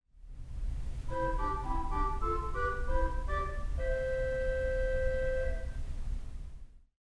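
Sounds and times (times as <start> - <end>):
theatre organ quintadena stop: 1.1 - 5.8.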